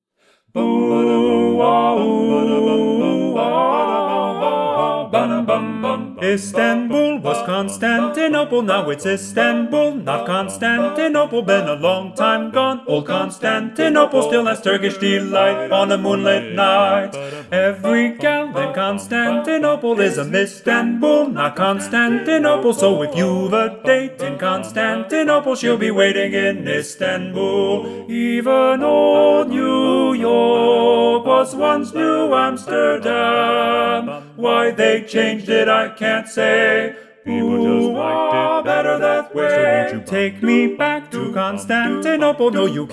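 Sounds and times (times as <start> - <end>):
TTBB male vocal harmony with predominant lead: 0.5 - 42.9.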